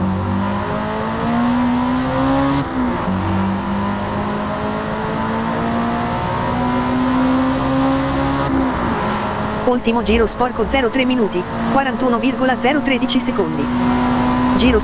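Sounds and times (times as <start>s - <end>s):
racing car engine in a motorsport video game accelerating and braking: 0.0s - 14.8s
speech: 9.7s - 14.8s.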